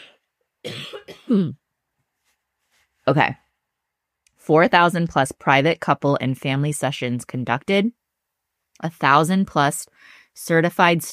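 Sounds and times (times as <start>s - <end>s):
throat clearing from a tickle in the throat: 0.0s - 1.6s
speech: 0.9s - 1.6s, 3.1s - 3.4s, 4.5s - 8.0s, 8.8s - 11.1s.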